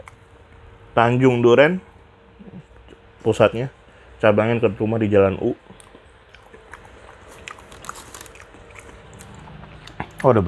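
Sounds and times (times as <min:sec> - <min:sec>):
speech: 0:01.0 - 0:01.9, 0:03.2 - 0:05.7, 0:10.2 - 0:10.4
chewing a mouthful of rice during a meal: 0:05.4 - 0:10.4.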